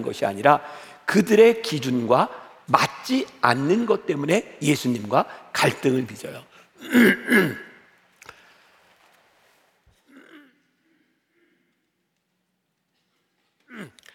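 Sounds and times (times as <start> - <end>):
speech: 0.0 - 7.7
throat clearing: 6.8 - 7.8, 10.0 - 11.0, 13.6 - 14.1
person coughing: 6.8 - 7.9.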